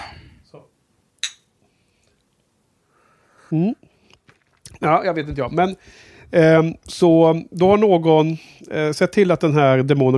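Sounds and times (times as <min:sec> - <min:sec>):
breathing: 0:00.0 - 0:00.5, 0:01.6 - 0:02.2, 0:02.8 - 0:04.2, 0:05.8 - 0:06.4, 0:08.4 - 0:08.7
glasses clinking in a toast: 0:01.2 - 0:01.5
speech: 0:03.5 - 0:03.9, 0:04.8 - 0:10.1.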